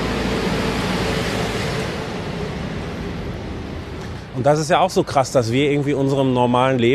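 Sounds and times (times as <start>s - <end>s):
heavy garbage truck rumbling by on a street: 0.0s - 5.4s
speech: 4.4s - 6.9s.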